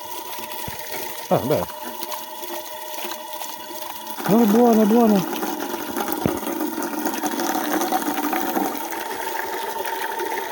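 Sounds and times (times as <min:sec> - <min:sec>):
water running from a drinking fountain: 0:00.0 - 0:10.5
speech: 0:01.3 - 0:01.8, 0:04.3 - 0:05.4.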